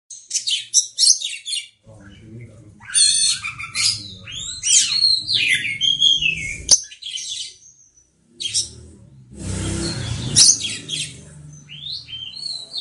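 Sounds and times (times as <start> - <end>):
oriental magpie-robin singing: 0.1 - 8.8, 9.6 - 12.7
low hum: 3.4 - 6.7, 8.0 - 12.5.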